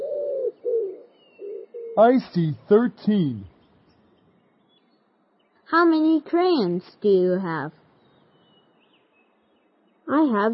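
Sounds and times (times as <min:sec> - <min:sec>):
birds cooing: 0:00.0 - 0:02.2
speech: 0:02.0 - 0:03.5, 0:05.7 - 0:07.8, 0:10.1 - 0:10.5.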